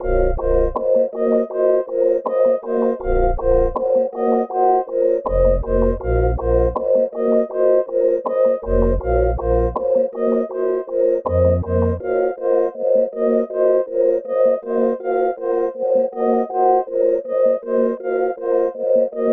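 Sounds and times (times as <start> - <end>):
melodies in A sharp minor: 0.0 - 19.3.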